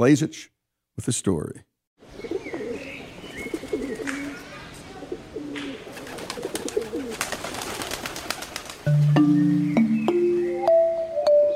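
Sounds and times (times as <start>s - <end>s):
speech: 0.0s - 2.2s
birds chirping: 2.0s - 11.5s
homing pigeons cooing: 2.1s - 11.5s
pigeon wings fluttering: 3.5s - 4.4s, 5.5s - 8.9s.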